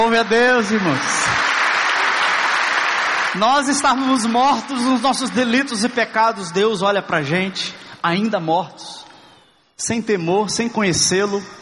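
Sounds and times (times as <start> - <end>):
speech: 0.0 - 1.5, 3.3 - 8.9, 9.8 - 11.6
audience applauding to praise God: 0.0 - 5.9.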